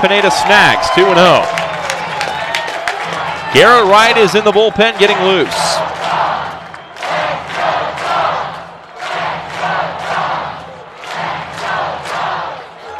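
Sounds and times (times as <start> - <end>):
speech: 0.0 - 1.6, 3.5 - 5.7
baseball crowd chanting: 5.1 - 12.9.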